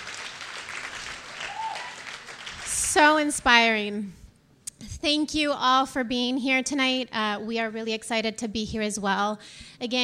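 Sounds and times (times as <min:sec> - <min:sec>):
audience applause: 0:00.0 - 0:02.9
whistle: 0:01.4 - 0:02.0
speech: 0:03.0 - 0:04.2, 0:05.0 - 0:10.0.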